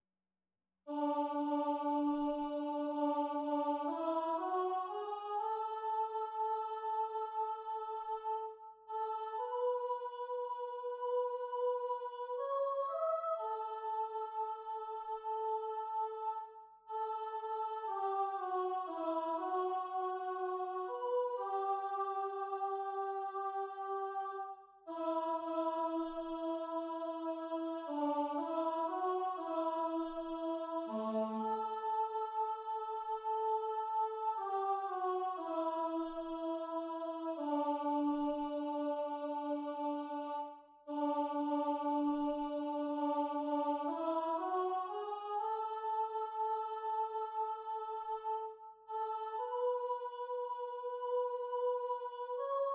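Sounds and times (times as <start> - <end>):
soprano singing in a choral setting: 0.9 - 52.7.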